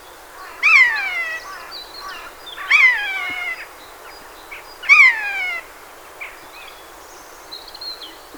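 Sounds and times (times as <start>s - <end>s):
Eurasian jay Garrulus glandarius giving mewing calls: 0.4s - 3.6s.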